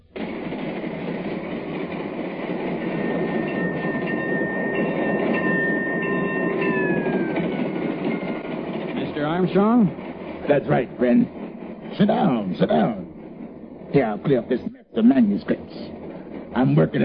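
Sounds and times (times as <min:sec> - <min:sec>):
train rolling along the rails with rumble and rattle: 0:00.0 - 0:17.0
thin metallic whining tones: 0:02.5 - 0:09.8
speech: 0:09.4 - 0:11.4, 0:12.0 - 0:13.0, 0:13.9 - 0:15.9, 0:16.6 - 0:17.0.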